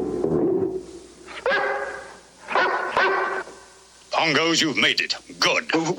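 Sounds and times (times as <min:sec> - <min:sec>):
Great Dane barking: 0:01.3 - 0:03.5
speech: 0:04.2 - 0:05.9.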